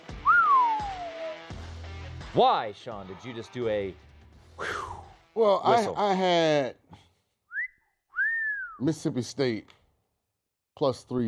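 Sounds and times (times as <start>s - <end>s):
person whistling: 0.1s - 1.5s, 4.6s - 5.0s, 7.5s - 8.8s
speech: 2.3s - 6.8s, 8.8s - 9.8s, 10.8s - 11.2s.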